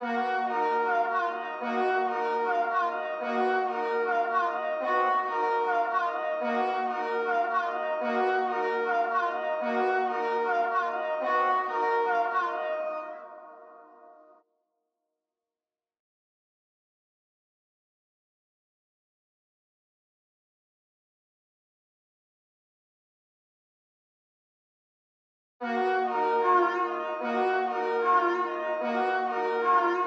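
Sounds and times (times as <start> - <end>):
D minor low strings loop at 150 BPM: 0.0 - 13.6, 25.7 - 30.0.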